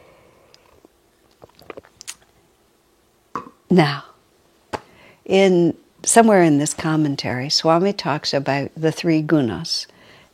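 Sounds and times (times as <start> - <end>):
person sipping water: 0.4 - 2.4
soft wet mouth clicks: 0.5 - 2.3
speech: 3.7 - 4.1, 5.3 - 9.9.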